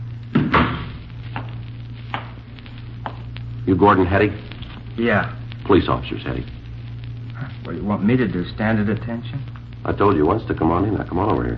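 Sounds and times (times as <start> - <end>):
steady low hum: 0.0 - 11.5
door pushed shut with a solid thump: 0.3 - 1.0
speech: 3.7 - 6.6, 7.7 - 11.5.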